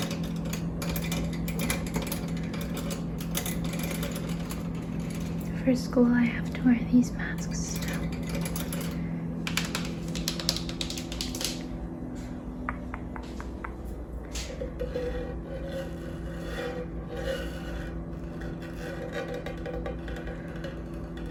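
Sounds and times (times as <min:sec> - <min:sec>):
steady low fridge hum: 0:00.0 - 0:21.3
speech: 0:05.7 - 0:07.6
fingernail tapping on hard household surfaces in an apartment kitchen: 0:12.6 - 0:13.8.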